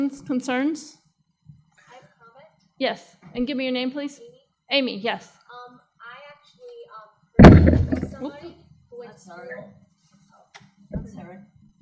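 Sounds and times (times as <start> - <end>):
speech: 0.0 - 1.0, 2.8 - 5.4, 7.4 - 9.8
small knock: 7.4 - 8.2
rustling: 7.4 - 8.3
someone running into a microphone boom: 7.4 - 8.3, 11.0 - 11.2.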